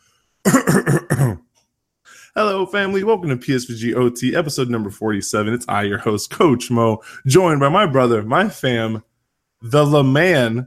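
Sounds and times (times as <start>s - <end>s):
raspy throaty harsh coughs: 0.4s - 1.5s
speech: 2.4s - 10.6s.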